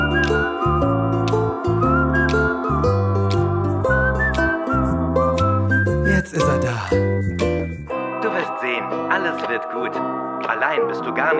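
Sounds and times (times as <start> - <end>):
person whistling a bright wandering tune: 0.0 - 7.9
steady instrumental backing music: 0.0 - 11.3
speech: 9.4 - 11.3.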